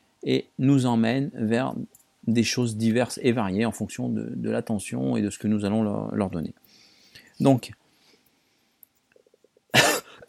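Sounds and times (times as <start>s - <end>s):
speech: 0.2s - 6.6s, 7.4s - 7.8s
person with a winter cough coughing harshly: 9.7s - 10.2s.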